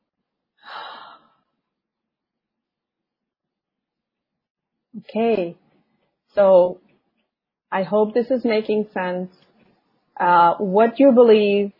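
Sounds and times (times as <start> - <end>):
deep breath: 0.6 - 1.6
speech: 5.0 - 5.6, 6.3 - 6.8, 7.7 - 9.4, 10.2 - 11.7.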